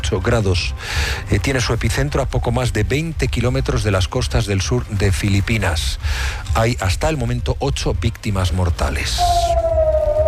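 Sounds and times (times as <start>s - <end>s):
speech: 0.1s - 9.6s
air raid sirens after interception of a missile launch from Iran in Israel: 9.2s - 10.2s.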